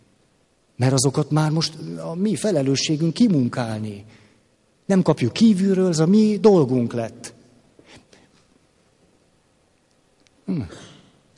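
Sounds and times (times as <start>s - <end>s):
speech: 0.8s - 4.2s, 4.9s - 7.4s
short stifled sneeze or quick cough: 10.5s - 11.2s.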